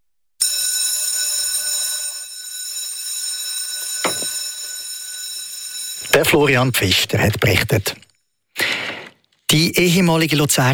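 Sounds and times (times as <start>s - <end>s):
electric school bell ringing with a metallic clang: 0.4s - 8.0s
speech: 6.1s - 8.0s, 9.5s - 10.7s.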